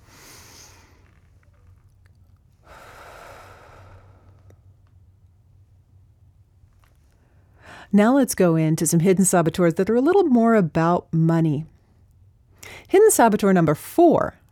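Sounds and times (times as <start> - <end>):
low steady hum: 0.0 - 14.5
deep breath drawn in slowly and softly: 2.6 - 4.5, 7.5 - 7.9
speech: 7.9 - 11.7, 12.9 - 14.5.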